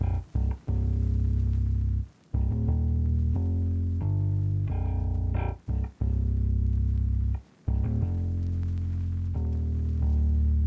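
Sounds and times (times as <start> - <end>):
bass melody loop in C sharp minor: 0.0 - 10.6.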